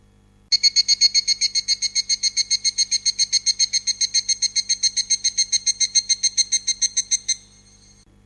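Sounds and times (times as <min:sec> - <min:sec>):
evening cicada song: 0:00.5 - 0:08.1.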